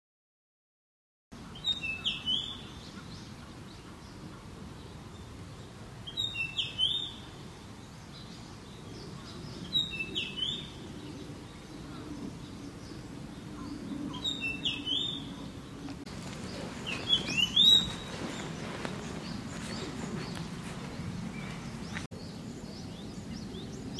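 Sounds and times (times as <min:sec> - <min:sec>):
sendai mushikui warbler calling: 0:01.4 - 0:23.9.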